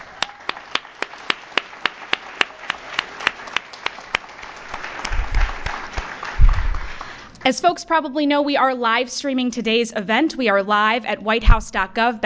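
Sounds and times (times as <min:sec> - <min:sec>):
audience applause: 0:00.0 - 0:07.4
speech: 0:07.4 - 0:12.2.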